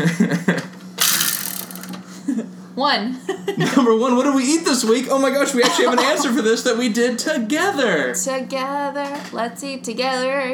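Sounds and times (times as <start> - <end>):
spinning topic wheel ratcheting clicks: 1.0 - 2.0
speech: 2.8 - 10.5.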